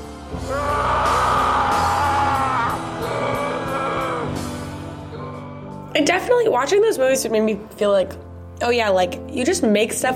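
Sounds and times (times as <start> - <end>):
long sustained high strained scream in a film scene: 0.5 - 4.4
speech: 6.0 - 10.1.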